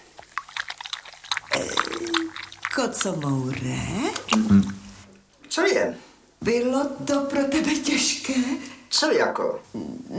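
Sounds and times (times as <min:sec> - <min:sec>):
milk being poured and partly spilled: 0:00.0 - 0:05.0
speech: 0:02.8 - 0:04.8, 0:05.6 - 0:10.1.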